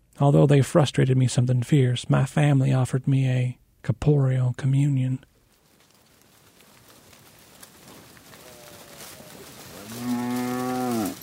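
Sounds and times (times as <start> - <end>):
steady outdoor hiss: 0.0 - 11.2
speech: 0.2 - 5.3
cow mooing: 8.4 - 11.2.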